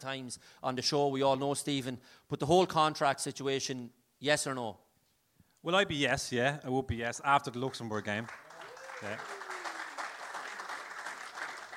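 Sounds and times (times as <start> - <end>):
speech: 0.0 - 4.8, 5.6 - 8.4, 9.0 - 9.4
faint applause from many hands clapping: 8.1 - 11.7.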